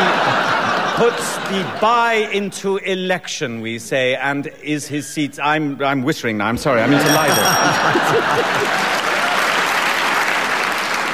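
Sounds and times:
live audience applause: 0:00.0 - 0:01.2, 0:07.1 - 0:11.1
laughter: 0:00.0 - 0:02.4, 0:06.7 - 0:09.8
speech: 0:01.0 - 0:09.0.

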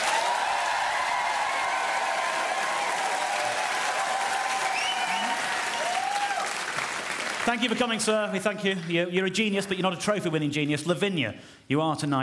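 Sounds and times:
faint whoops from audience: 0:00.0 - 0:06.6
large audience applause voting for a contestant: 0:00.0 - 0:09.0
speech: 0:07.5 - 0:12.2.

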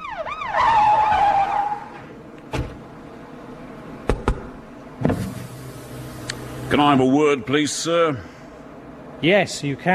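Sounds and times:
police siren wailing: 0:00.0 - 0:02.0
bursts of vehicle noise: 0:00.0 - 0:09.2
speeding car engine: 0:00.1 - 0:09.2
speech: 0:06.7 - 0:08.4, 0:09.2 - 0:09.9.

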